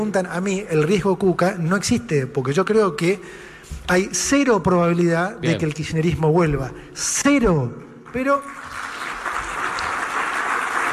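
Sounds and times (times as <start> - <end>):
speech: 0.0 - 8.6
audience applause: 8.3 - 10.9.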